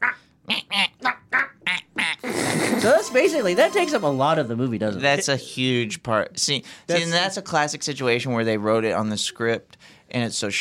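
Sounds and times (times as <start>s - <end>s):
voice imitating a penguin with nasal quacking squawks: 0.0s - 3.0s
speech: 2.8s - 10.5s.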